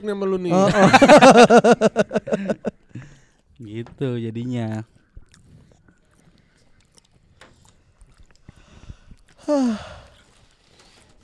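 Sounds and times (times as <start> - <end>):
speech: 0.0 - 2.8, 3.6 - 5.0, 9.5 - 10.0
laughter: 0.5 - 2.8
wet chewing of food: 4.9 - 11.2.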